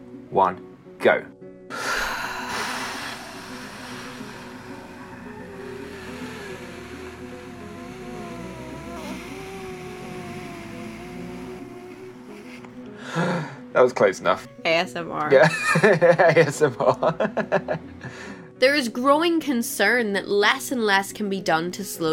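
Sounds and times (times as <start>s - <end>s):
speech: 0.3s - 1.4s, 13.8s - 22.1s
two people breathing out in one long soft exhale: 1.7s - 10.0s, 11.9s - 13.7s, 18.0s - 18.5s
laughter: 15.4s - 18.0s.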